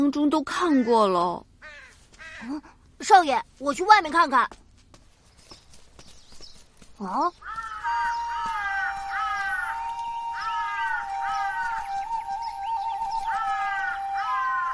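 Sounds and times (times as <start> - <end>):
speech: 0.1 - 1.5, 2.4 - 4.6, 7.0 - 7.6
two big crows cawing: 1.6 - 2.8, 7.2 - 14.7.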